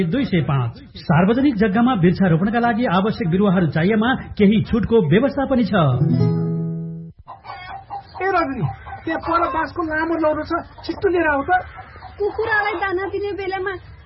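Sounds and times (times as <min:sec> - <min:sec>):
speech: 0:00.0 - 0:06.5, 0:08.2 - 0:13.9
chickens clucking on a poultry farm: 0:07.2 - 0:14.0.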